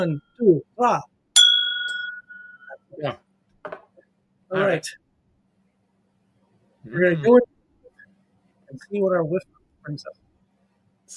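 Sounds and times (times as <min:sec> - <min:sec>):
speech: 0:00.0 - 0:01.1, 0:03.0 - 0:03.8, 0:04.5 - 0:05.0, 0:06.8 - 0:07.5, 0:08.7 - 0:10.2
glasses clinking in a toast at a barley single malt whisky tasting: 0:01.4 - 0:02.8.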